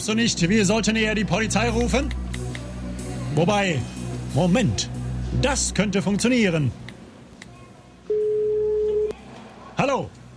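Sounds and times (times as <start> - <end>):
speech: 0.0 - 2.5, 3.4 - 6.8, 9.8 - 10.2
mobile phone redial ringing tone: 8.1 - 9.1.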